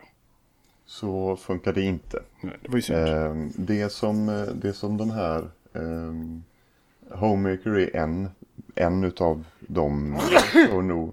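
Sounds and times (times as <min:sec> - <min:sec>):
speech: 0:00.9 - 0:06.5, 0:07.1 - 0:11.1
person sneezing: 0:10.2 - 0:10.8.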